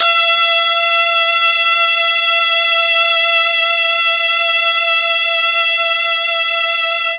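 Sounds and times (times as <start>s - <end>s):
mellotron MKII brass E4 note: 0.0s - 7.1s.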